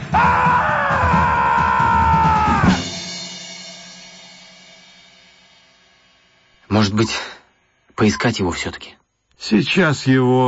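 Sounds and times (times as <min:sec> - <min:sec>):
man screaming as he leaps from a ship's yardarm into the sea: 0:00.0 - 0:02.8
speech: 0:06.8 - 0:07.3, 0:08.0 - 0:10.4.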